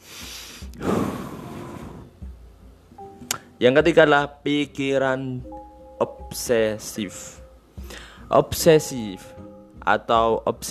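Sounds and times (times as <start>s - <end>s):
long deep inhale as a relaxation technique: 0.0s - 2.2s, 7.8s - 8.3s
speech: 3.6s - 10.7s.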